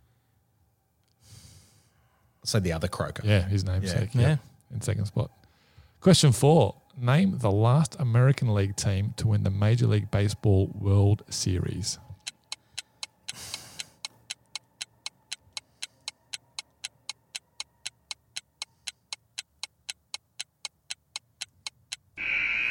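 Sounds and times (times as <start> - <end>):
speech: 2.5 - 5.4, 6.0 - 12.1
shot clock ticking counting down: 12.2 - 22.2
loud tone: 22.2 - 22.6.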